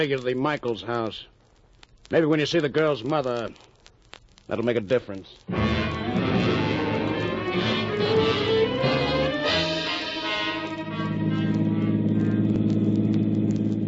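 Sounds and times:
speech: 0.0 - 1.4, 2.1 - 3.7, 4.5 - 5.8
car engine humming during a drive: 5.6 - 13.8
road noise: 5.6 - 13.8.

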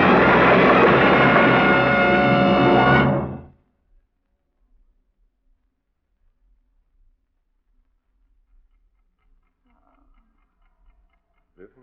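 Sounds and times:
loud shrill warning horn blaring: 0.0 - 3.5.

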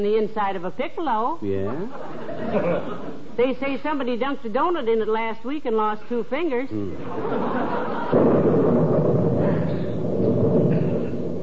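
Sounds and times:
speech: 0.0 - 8.7
constant hiss of noise: 0.0 - 11.4
laughter: 1.5 - 3.3, 6.9 - 8.2
low rolling thunder rumble: 7.0 - 11.4.

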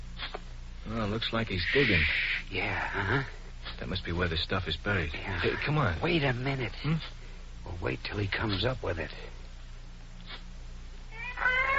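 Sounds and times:
low steady hum: 0.0 - 11.7
speech: 0.9 - 9.4
cat yowling: 11.1 - 11.7.

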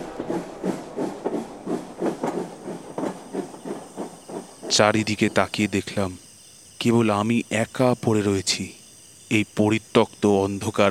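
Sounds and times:
train pulling out of a station: 0.0 - 6.2
speech: 4.7 - 6.2, 6.8 - 10.8.

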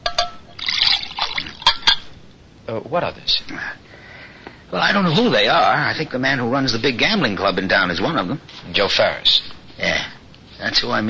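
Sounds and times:
sharp clinks of a glass: 0.0 - 2.1
water dripping: 0.0 - 2.1
water pouring into a glass: 0.5 - 2.0
speech: 2.7 - 3.8, 4.7 - 11.0.

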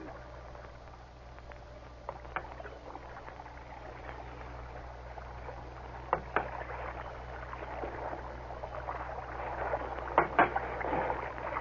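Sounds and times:
oars rowing a small boat through water: 0.0 - 11.6
wood knocking on a small boat: 6.0 - 6.6, 10.0 - 11.2.

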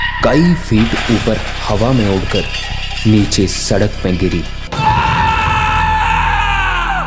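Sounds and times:
speech: 0.2 - 4.6
man screaming as he wakes from a nightmare: 4.7 - 7.0.

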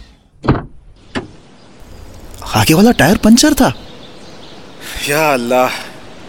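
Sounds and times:
soft outdoor hush beside an old cemetery in the cold: 0.0 - 6.2
car door opening with a solid clunk: 0.4 - 1.4
speech: 2.6 - 3.8, 5.0 - 5.8.

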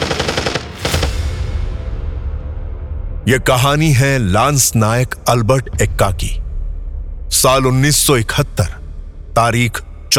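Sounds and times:
machine gun fire in a night battle: 0.0 - 1.1
heavy blast: 0.0 - 9.4
low rumble: 0.8 - 10.1
speech: 3.3 - 6.4, 7.3 - 8.8, 9.4 - 10.1.

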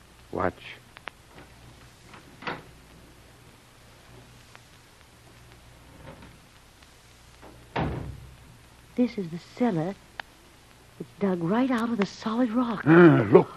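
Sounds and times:
low steady hum: 0.0 - 13.5
speech: 0.4 - 0.8, 9.0 - 10.1, 11.2 - 13.5
door creaking: 1.3 - 2.8, 5.8 - 6.5, 7.4 - 8.4
door opening: 1.3 - 2.8, 7.4 - 8.4
rattling thud of the door swinging: 7.7 - 8.3.

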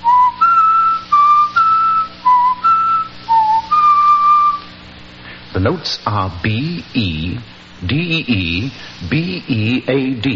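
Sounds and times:
person whistling a short melody: 0.0 - 4.7
speech: 5.6 - 10.3.

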